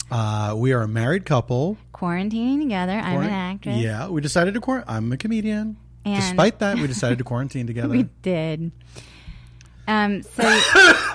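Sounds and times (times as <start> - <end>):
speech: 0.1 - 9.2, 9.9 - 11.1
person coughing with a nut husk stuck in the throat: 10.4 - 11.1.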